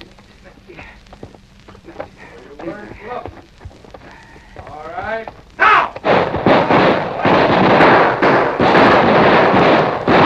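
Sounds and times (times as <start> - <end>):
gunfire volley from kneeling outlaws and an advancing posse: 5.7 - 10.2.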